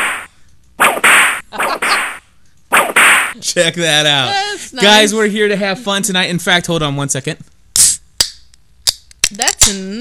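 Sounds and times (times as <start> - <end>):
whip sound effect swishing and cracking: 0.0 - 3.4
speech: 3.4 - 7.5, 9.4 - 9.9.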